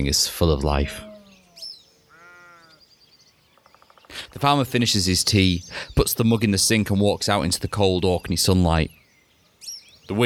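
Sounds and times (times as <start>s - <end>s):
speech: 0.0s - 1.1s, 4.4s - 9.0s, 10.1s - 10.2s
farm animals bleating on an Orkney farm in summer: 0.6s - 2.8s.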